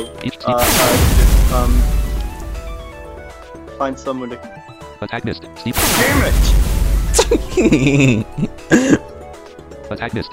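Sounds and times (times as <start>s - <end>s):
speech: 0.0s - 1.9s, 3.8s - 9.0s, 9.9s - 10.3s
video game cannon blast with deep rumbling tail: 0.5s - 3.4s, 5.8s - 8.6s
laughter: 7.2s - 9.0s.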